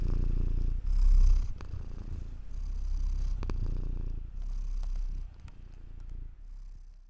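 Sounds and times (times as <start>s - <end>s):
cat purring: 0.0s - 7.0s
soft clicks: 4.8s - 6.3s.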